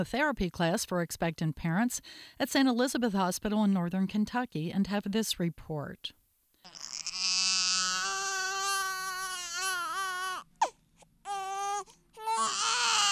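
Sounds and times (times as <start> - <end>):
speech: 0.0 - 6.9
newborn baby crying: 6.6 - 13.1.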